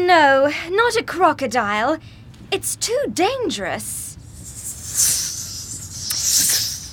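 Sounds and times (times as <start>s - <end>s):
speech: 0.2s - 4.1s
snake hissing: 4.1s - 6.9s.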